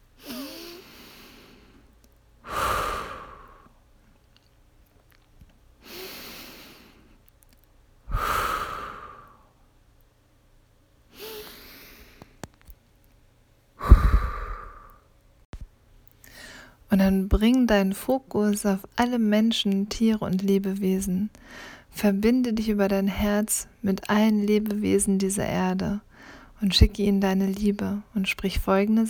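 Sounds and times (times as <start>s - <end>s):
slow deep breathing in and out: 0.2s - 3.8s, 8.1s - 9.6s, 13.8s - 15.1s, 16.2s - 16.8s, 21.4s - 21.9s, 26.1s - 26.6s
speech: 16.9s - 29.0s.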